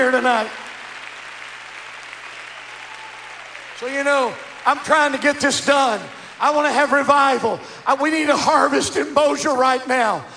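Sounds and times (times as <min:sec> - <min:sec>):
speech: 0:00.0 - 0:00.6, 0:03.8 - 0:10.3
audience applause from a church congregation: 0:00.0 - 0:07.4.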